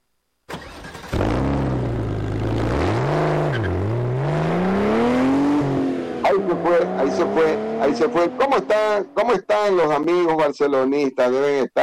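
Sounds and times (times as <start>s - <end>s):
car engine revving: 0.6s - 9.2s
speech: 6.6s - 11.8s.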